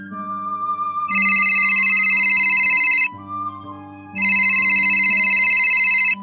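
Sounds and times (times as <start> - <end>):
red telephone ringing loudly: 1.1 - 3.1, 4.2 - 6.2.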